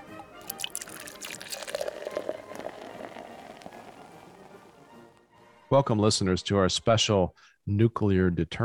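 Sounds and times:
Irish whiskey pouring into a glass: 0:00.4 - 0:04.9
speech: 0:05.7 - 0:08.6.

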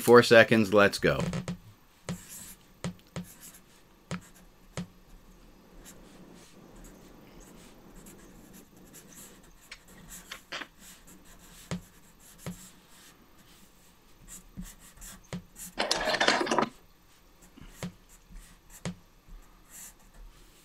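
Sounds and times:
speech: 0:00.0 - 0:01.5
pen scratching and tapping on paper while drawing: 0:02.0 - 0:04.9, 0:05.8 - 0:15.8, 0:19.6 - 0:20.6.

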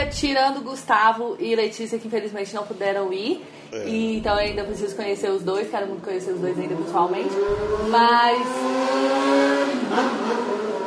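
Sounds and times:
speech: 0:00.1 - 0:10.6
motorcycle engine passing by outside: 0:06.5 - 0:10.8.

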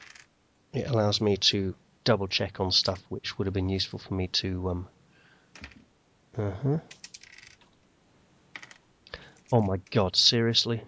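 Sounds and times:
dice rattling during a tabletop role-playing game: 0:00.0 - 0:00.3, 0:06.9 - 0:07.6, 0:08.6 - 0:08.8
speech: 0:00.7 - 0:05.0, 0:06.4 - 0:07.0, 0:09.5 - 0:10.8.

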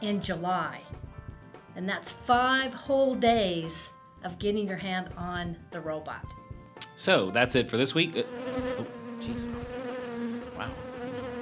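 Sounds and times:
speech: 0:00.0 - 0:01.0, 0:01.8 - 0:06.4, 0:07.0 - 0:09.8, 0:10.6 - 0:10.9
bee buzzing while hovering: 0:07.9 - 0:11.3.

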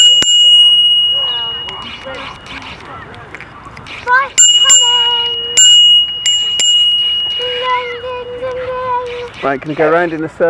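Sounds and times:
bicycle-style bell dinging: 0:00.0 - 0:03.2, 0:04.1 - 0:09.5
speech: 0:09.5 - 0:10.4.

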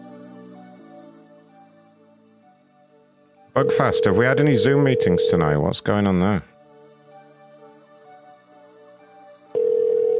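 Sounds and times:
steady electronic phone line tone on an outgoing call: 0:03.6 - 0:05.6, 0:09.6 - 0:10.1
speech: 0:03.6 - 0:06.5.

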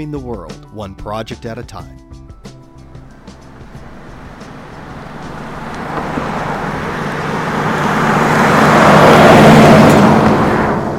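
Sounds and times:
speech: 0:00.0 - 0:02.2
heavy traffic roar on an eight-lane interstate: 0:02.4 - 0:10.9.

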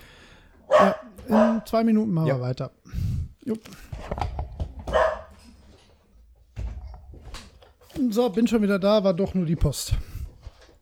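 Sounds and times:
dog barking: 0:00.7 - 0:01.7, 0:04.9 - 0:05.4
speech: 0:01.6 - 0:02.8, 0:03.4 - 0:03.9, 0:08.1 - 0:10.2.

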